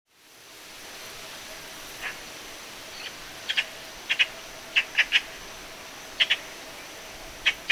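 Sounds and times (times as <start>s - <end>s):
steady hiss: 0.1s - 7.7s
Eurasian magpie harsh chak calls: 3.0s - 5.3s, 6.2s - 6.4s, 7.4s - 7.7s.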